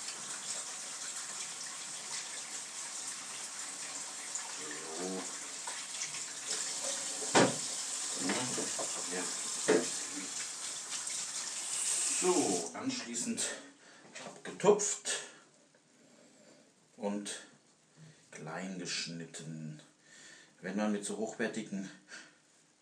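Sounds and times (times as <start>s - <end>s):
running tap water rinsing ripe aroma tomatoes: 0.0s - 12.8s
knocks: 7.3s - 7.6s
speech: 12.2s - 13.7s, 14.6s - 15.2s, 17.0s - 17.5s, 18.5s - 19.9s, 20.6s - 22.2s.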